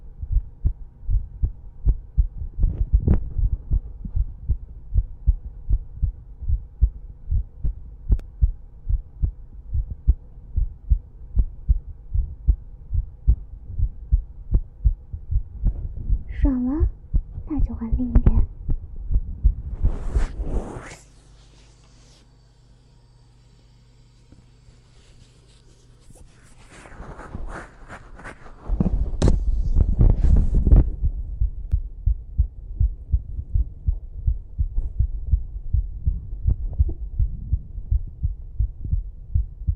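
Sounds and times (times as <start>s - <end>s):
rapid heartbeat: 0.0s - 20.8s, 27.0s - 39.7s
speech: 17.8s - 18.6s
rustling: 24.9s - 30.8s.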